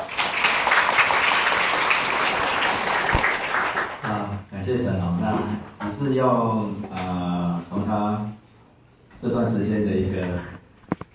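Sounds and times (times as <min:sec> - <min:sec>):
enthusiastic audience applause: 0:00.0 - 0:04.1
speech: 0:04.7 - 0:07.2, 0:07.8 - 0:08.4, 0:09.2 - 0:10.5.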